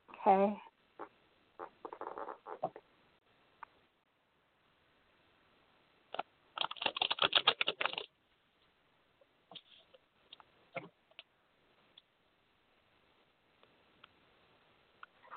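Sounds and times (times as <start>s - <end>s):
speech: 0.2s - 0.7s
deck of cards being shuffled: 6.6s - 8.1s.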